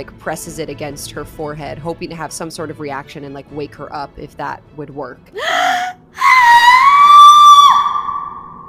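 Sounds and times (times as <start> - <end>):
speech: 0.0 - 5.8
person crying out: 5.4 - 8.4
loud sustained agonized scream of pain trailing into a wail: 5.4 - 8.6.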